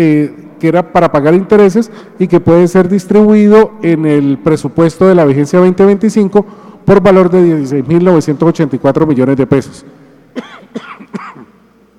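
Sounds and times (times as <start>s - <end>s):
speech: 0.0s - 11.2s
person with bronchitis coughing harshly: 10.3s - 11.6s.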